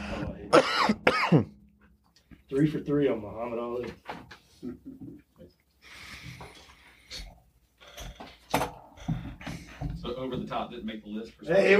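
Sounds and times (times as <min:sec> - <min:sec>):
harsh raspy coughing and throat clearing: 0:00.3 - 0:01.7
speech: 0:00.5 - 0:01.6, 0:02.5 - 0:06.0, 0:10.2 - 0:11.7.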